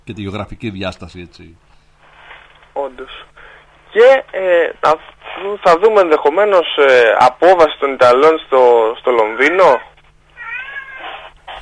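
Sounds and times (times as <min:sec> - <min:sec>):
speech: 0:00.1 - 0:01.8, 0:02.8 - 0:09.9
male house cat meowing: 0:10.4 - 0:11.3.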